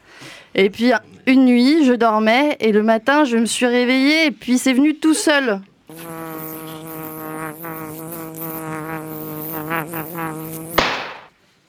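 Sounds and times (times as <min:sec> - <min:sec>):
speech: 0:00.6 - 0:06.0
fly buzzing: 0:05.9 - 0:11.3
sharp smack: 0:10.8 - 0:11.4.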